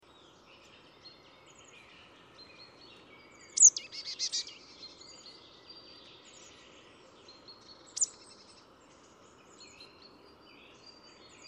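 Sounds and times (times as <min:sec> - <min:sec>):
soft background birdsong: 0:00.0 - 0:11.4
Marsh Tit calling: 0:03.5 - 0:04.7, 0:07.9 - 0:08.2.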